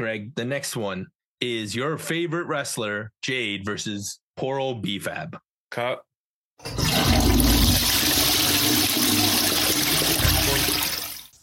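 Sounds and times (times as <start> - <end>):
speech: 0.0 - 7.1
toilet flushing: 6.6 - 11.3.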